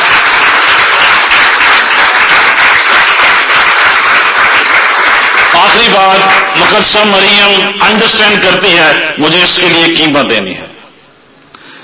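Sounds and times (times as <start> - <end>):
loud audience applause at a religious gathering: 0.0 - 7.3
speech: 5.8 - 10.7.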